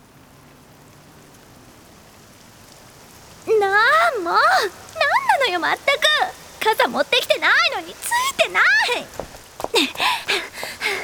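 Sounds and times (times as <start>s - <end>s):
rain falling: 0.0s - 11.0s
speech: 5.4s - 10.5s.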